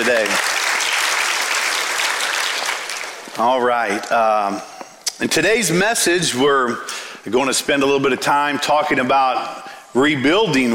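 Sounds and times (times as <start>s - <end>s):
speech: 0.0s - 0.5s, 3.4s - 10.7s
church congregation clapping for a pastor: 0.0s - 4.1s.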